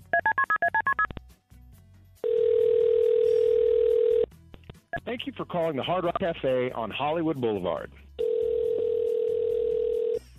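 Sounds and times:
telephone touch-tone dialling beeps: 0:00.2 - 0:01.1, 0:02.2 - 0:04.2, 0:08.2 - 0:10.2
loud steady telephone line tone: 0:02.2 - 0:04.2, 0:08.2 - 0:10.2
speech: 0:05.0 - 0:08.1.

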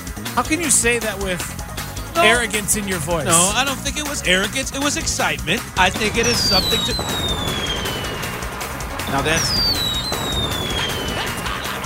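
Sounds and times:
speech: 0:00.4 - 0:07.7, 0:09.1 - 0:09.8
laughter: 0:02.2 - 0:07.0, 0:10.2 - 0:11.8
crackling firework burst popping: 0:05.9 - 0:11.8
high whistling firework rockets: 0:05.9 - 0:11.8.

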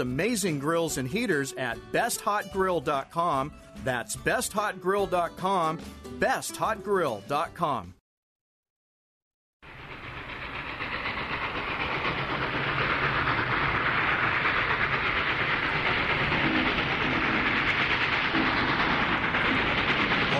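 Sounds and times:
train passing: 0:00.0 - 0:05.7, 0:09.6 - 0:20.3
speech: 0:00.0 - 0:08.0
faint rail clatter: 0:09.7 - 0:20.3.

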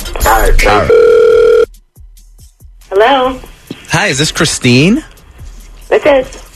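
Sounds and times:
speech: 0:00.2 - 0:01.0, 0:03.1 - 0:05.1, 0:05.9 - 0:06.4
telephone dial tone as a radio station places a call: 0:00.9 - 0:01.7.

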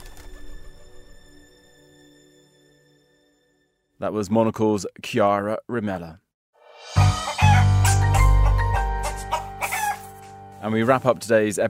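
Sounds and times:
speech: 0:04.0 - 0:06.2, 0:10.6 - 0:11.6
backyard chickens clucking and squawking: 0:07.0 - 0:10.2.

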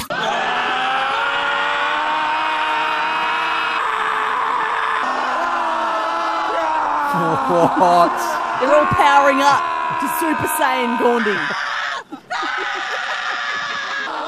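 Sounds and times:
group of people yelling in a park: 0:00.0 - 0:14.2
laughter: 0:06.5 - 0:14.2
speech: 0:07.5 - 0:11.7.

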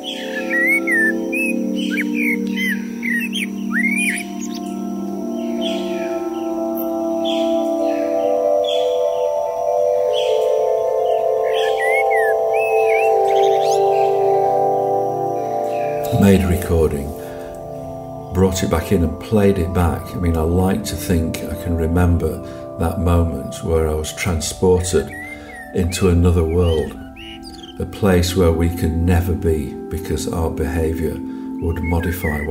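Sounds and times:
small garden birds chirping and twittering at a bird table at a house near Sheffield: 0:00.0 - 0:32.5
speech: 0:18.5 - 0:27.0, 0:27.8 - 0:32.5.

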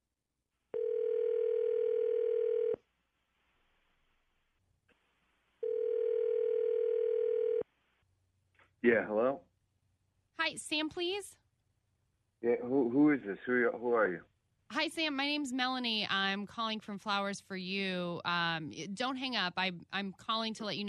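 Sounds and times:
long steady telephone ringing tones: 0:00.7 - 0:02.8, 0:05.6 - 0:07.7
speech: 0:08.9 - 0:09.5, 0:10.5 - 0:11.4, 0:12.4 - 0:20.8.

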